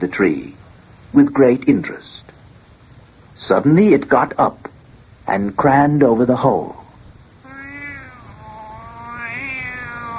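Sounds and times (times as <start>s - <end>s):
speech: 0.0s - 2.3s, 3.4s - 4.7s, 5.3s - 6.8s
cat meowing and yowling: 7.4s - 10.1s.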